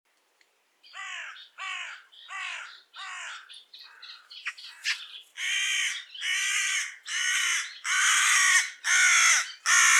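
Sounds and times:
Carrion crow Corvus corone giving harsh caws: 0:01.0 - 0:09.9.

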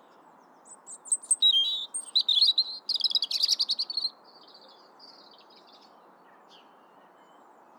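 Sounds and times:
European robin Erithacus rubecula song of high whistles and twittering: 0:00.6 - 0:05.3.

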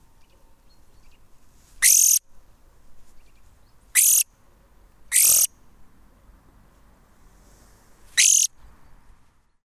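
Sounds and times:
European greenfinch Chloris chloris rasping calls: 0:01.8 - 0:02.2, 0:04.0 - 0:04.2, 0:05.1 - 0:05.5, 0:08.2 - 0:08.5.

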